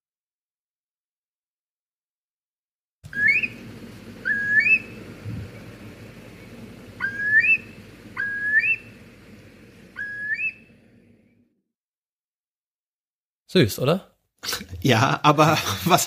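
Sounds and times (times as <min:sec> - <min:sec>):
Eurasian curlew calling: 0:03.1 - 0:10.8
steady low outdoor rumble: 0:03.1 - 0:11.5
speech: 0:13.5 - 0:16.0
laughter: 0:15.3 - 0:16.0.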